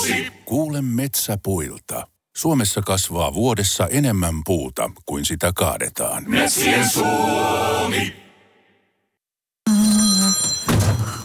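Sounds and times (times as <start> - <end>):
speech: 0.0 - 8.2
phone ringing with bright bell-like electronic tone for incoming call: 9.7 - 11.2.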